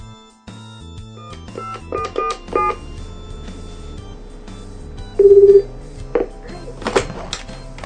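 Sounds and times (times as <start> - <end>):
phone keypad beeps: 1.5 - 2.8, 5.2 - 5.7
telephone ringback tone: 1.5 - 3.3, 5.1 - 6.4.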